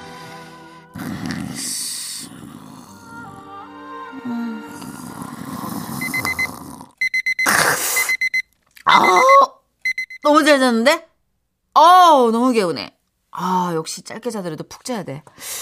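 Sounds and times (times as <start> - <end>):
alarm clock ringing: 7.0 - 10.2
speech: 8.9 - 9.4, 10.4 - 11.1, 11.8 - 15.6.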